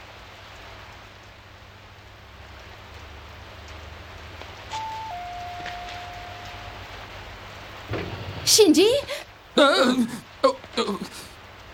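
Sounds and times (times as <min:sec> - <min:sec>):
steady rain spattering on surfaces: 0:00.0 - 0:11.7
thin electronic tone: 0:04.7 - 0:06.8
low rumbling: 0:06.2 - 0:09.6
speech: 0:08.5 - 0:10.2.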